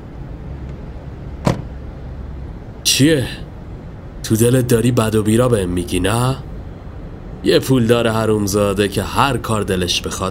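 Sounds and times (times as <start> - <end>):
low steady rumble of an idling vehicle: 0.0 - 10.2
car door shutting with a solid thud: 1.4 - 1.8
speech: 2.9 - 3.4, 4.3 - 6.5, 7.4 - 10.2.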